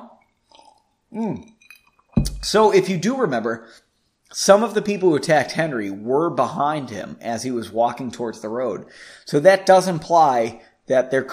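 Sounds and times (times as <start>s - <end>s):
sipping a drink: 0.1s - 2.5s
gulp and voiced swallow: 0.3s - 2.5s
soft mouth noises: 0.3s - 2.5s
speech: 1.1s - 1.6s, 2.4s - 11.3s.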